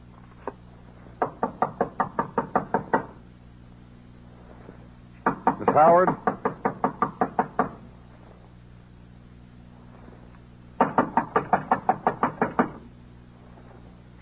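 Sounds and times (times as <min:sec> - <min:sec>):
police knocking on a door: 0:01.2 - 0:03.1, 0:05.3 - 0:07.8, 0:10.8 - 0:12.8
speech: 0:05.7 - 0:06.2.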